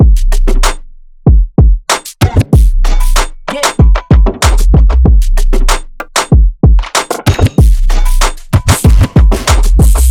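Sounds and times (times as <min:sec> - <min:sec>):
percussion loop: 0:00.0 - 0:10.0.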